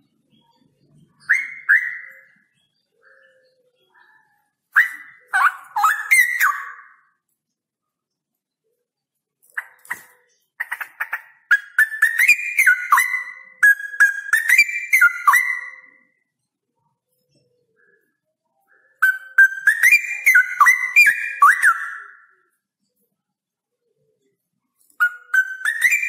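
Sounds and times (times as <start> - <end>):
male straw-headed bulbul singing with rolling trills: 0.0 - 26.0.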